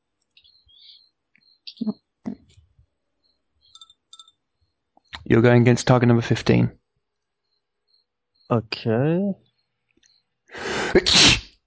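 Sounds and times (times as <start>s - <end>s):
speech: 1.8s - 2.0s, 5.3s - 6.8s, 8.5s - 9.4s, 10.5s - 11.4s
sneeze: 11.0s - 11.5s.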